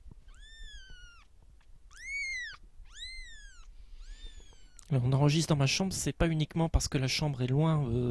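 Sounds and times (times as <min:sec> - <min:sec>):
kitten mewing in a bedroom: 0:00.3 - 0:01.3, 0:01.9 - 0:04.9
speech: 0:04.9 - 0:08.0.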